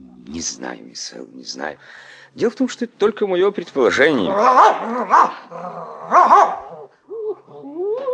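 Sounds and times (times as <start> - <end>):
speech: 0.3 - 6.7
dog barking: 4.4 - 5.4, 6.1 - 6.8.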